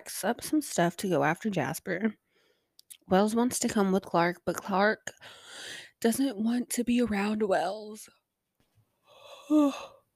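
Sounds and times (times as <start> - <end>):
speech: 0.0 - 2.2, 3.1 - 8.2, 9.5 - 10.0
person yawning: 9.2 - 10.0.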